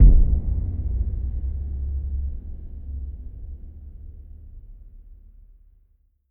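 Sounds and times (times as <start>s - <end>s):
abyss bottom boom: 0.0s - 4.6s.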